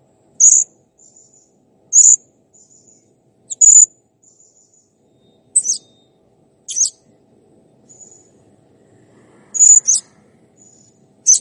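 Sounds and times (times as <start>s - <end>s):
faint high sounds: 0.4s - 7.1s, 7.8s - 11.3s
blue-crowned hanging parrot piercing high calls: 5.6s - 5.9s, 6.7s - 7.0s, 9.6s - 10.0s.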